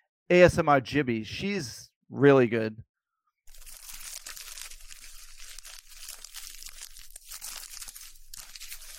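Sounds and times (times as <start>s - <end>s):
speech: 0.3s - 2.9s
woman crunching and crinkling an umbrella for ASMR: 3.5s - 8.9s.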